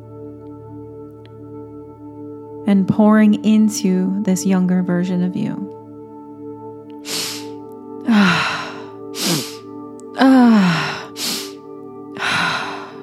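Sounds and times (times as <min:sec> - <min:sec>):
sustained musical drone: 0:00.0 - 0:13.0
speech: 0:02.6 - 0:05.8
deep breathing during a heart-opening breathwork session: 0:07.0 - 0:09.7, 0:10.4 - 0:11.6, 0:12.2 - 0:13.0.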